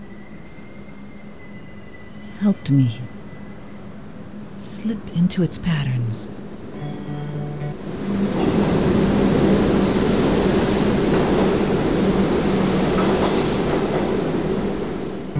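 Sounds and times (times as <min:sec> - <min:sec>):
train rumbling through a station: 0:00.0 - 0:15.3
speech: 0:02.4 - 0:03.2, 0:04.6 - 0:06.5
train wheels clattering: 0:08.3 - 0:14.7.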